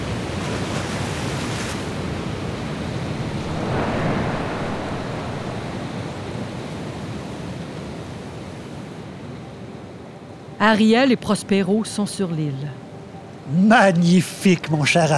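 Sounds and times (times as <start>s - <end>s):
stormy sea waves: 0.0s - 10.6s
gusting wind: 2.6s - 7.1s
speech: 10.6s - 12.8s, 13.5s - 15.1s.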